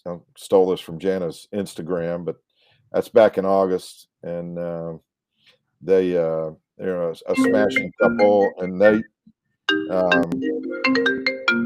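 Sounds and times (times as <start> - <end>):
speech: 0.0 - 5.1, 5.8 - 9.1, 9.7 - 11.0
mobile phone ringtone: 7.4 - 9.1, 9.7 - 11.6.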